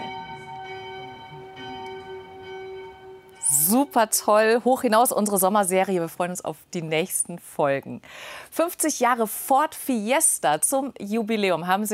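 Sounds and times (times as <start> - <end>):
church bells ringing for midday: 0.0 - 5.0
speech: 3.7 - 11.9.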